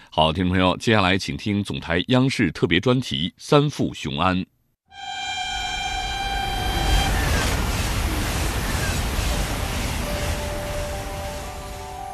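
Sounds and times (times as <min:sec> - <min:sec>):
speech: 0:00.2 - 0:05.1
high-speed train rushing past: 0:05.0 - 0:12.1
roar of wind and rail noise from high-speed train: 0:05.0 - 0:12.1.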